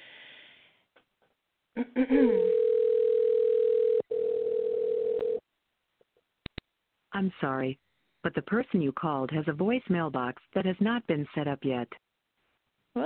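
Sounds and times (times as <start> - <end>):
speech: 1.8 - 2.6, 7.2 - 12.0
telephone ringing tone while calling a cell phone: 2.4 - 5.4.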